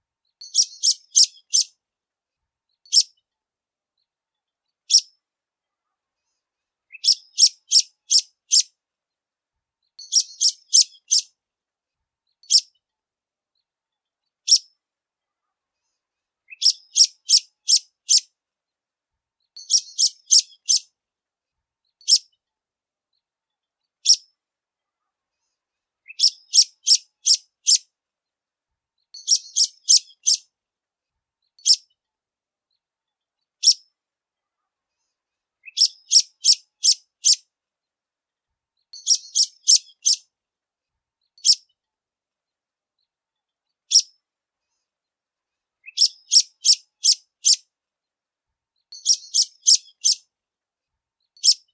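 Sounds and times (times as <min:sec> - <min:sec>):
degolado bird singing: 0:00.3 - 0:01.8, 0:02.8 - 0:03.2, 0:04.9 - 0:05.1, 0:06.9 - 0:08.7, 0:10.0 - 0:11.3, 0:16.4 - 0:18.3, 0:19.5 - 0:20.9, 0:21.9 - 0:22.4, 0:26.1 - 0:27.9, 0:29.0 - 0:30.5, 0:33.6 - 0:33.8, 0:35.6 - 0:37.4, 0:38.8 - 0:40.3, 0:41.3 - 0:41.8, 0:43.9 - 0:44.1, 0:45.8 - 0:47.6, 0:48.9 - 0:50.2, 0:51.3 - 0:51.7.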